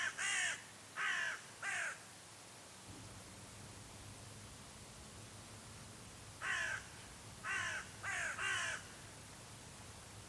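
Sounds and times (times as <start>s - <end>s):
bird giving harsh hoarse caws: 0.0s - 2.0s, 6.4s - 8.9s
quiet background hum: 0.0s - 10.2s.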